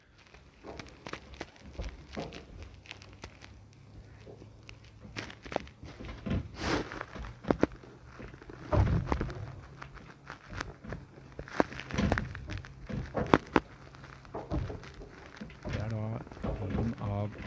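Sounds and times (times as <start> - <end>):
moored boat knocking and creaking on its mooring lines from speedboat wakes: 5.8 - 9.8, 10.5 - 17.4.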